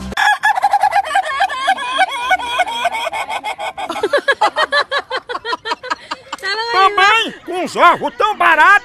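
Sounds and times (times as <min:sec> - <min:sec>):
rooster crowing: 0:00.2 - 0:03.8
laughter: 0:00.2 - 0:08.8
speech: 0:07.7 - 0:08.8.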